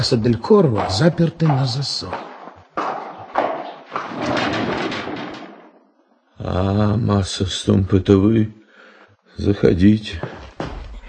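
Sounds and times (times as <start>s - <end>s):
speech: 0.0s - 2.3s, 6.4s - 8.6s, 9.4s - 10.7s
hooves of a horse carrying a rider and game: 0.0s - 5.6s.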